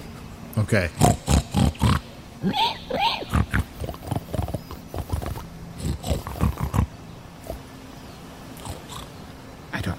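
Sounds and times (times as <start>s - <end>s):
speech: 0.6s - 1.2s, 2.4s - 3.4s
people imitating pig snuffling grunts and snorts: 0.9s - 6.9s.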